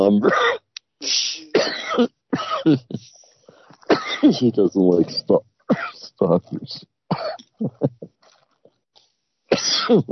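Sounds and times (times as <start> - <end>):
speech: 0.0 - 1.4, 2.0 - 3.2, 4.2 - 8.0, 9.5 - 10.1
harsh coughing from a heavy smoker: 0.1 - 4.6, 5.6 - 6.2, 7.1 - 8.2, 9.5 - 10.1.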